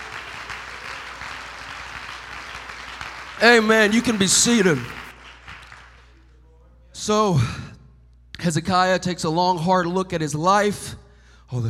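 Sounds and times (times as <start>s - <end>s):
audience clapping hands: 0.0s - 6.3s
speech: 3.4s - 5.0s, 7.1s - 7.8s, 8.4s - 11.6s.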